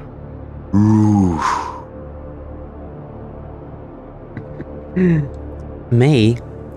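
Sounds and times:
speech: 0.7s - 1.7s, 5.0s - 6.5s
voice imitating a zombie's deep guttural grunt: 0.8s - 1.8s.

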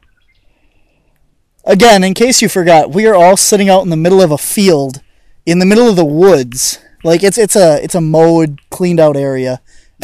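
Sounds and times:
woodpecker calling in a mowed field in the woods in Upper Michigan: 0.0s - 1.2s
speech: 1.7s - 10.0s.

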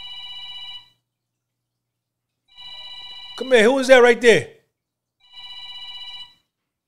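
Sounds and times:
phone ringing with incoming call: 0.0s - 1.0s, 2.5s - 4.4s, 5.2s - 6.6s
speech: 3.4s - 4.6s.

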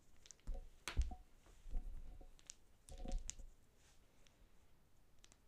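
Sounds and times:
tapping on wooden objects: 0.5s - 3.5s.

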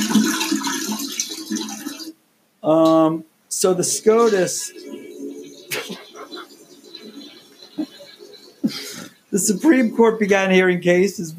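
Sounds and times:
toilet flushing during a teleconference hearing: 0.0s - 2.2s, 3.6s - 10.8s
speech: 2.6s - 5.0s, 9.4s - 11.3s.

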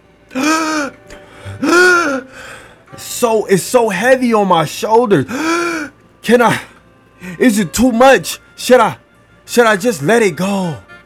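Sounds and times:
person gasping for air: 0.3s - 2.8s, 5.3s - 5.9s
speech: 3.2s - 5.5s, 6.3s - 6.7s, 7.3s - 10.8s.

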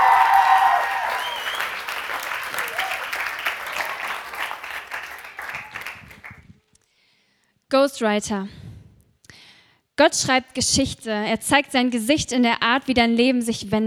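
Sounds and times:
audience applause: 0.0s - 6.4s
speech: 7.8s - 8.6s, 10.0s - 13.8s.

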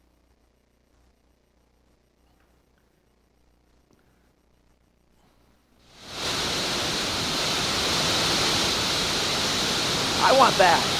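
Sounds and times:
rushing water roar: 6.0s - 10.9s
speech: 10.4s - 10.9s.

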